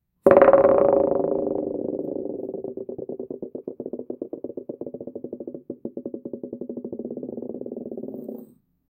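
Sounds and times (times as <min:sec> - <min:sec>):
smooth bowling ball rolling: 0:00.3 - 0:08.6.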